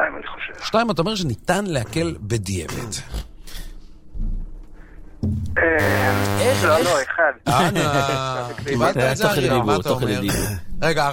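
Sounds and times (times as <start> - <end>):
speech: 0.7 - 3.2, 6.6 - 11.1
harsh quiz wrong-answer buzzer: 5.6 - 7.1
laughter: 6.9 - 9.7.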